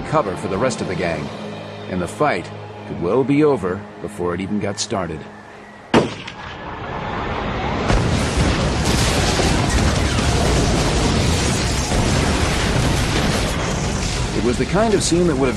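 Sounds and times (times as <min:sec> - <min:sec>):
speech: 0:00.1 - 0:05.4, 0:14.5 - 0:15.5
loud explosion with sharp blast: 0:05.9 - 0:15.5.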